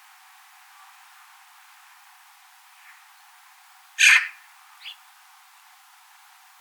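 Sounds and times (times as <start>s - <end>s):
Eurasian magpie Pica pica rasping call: 4.0s - 5.0s.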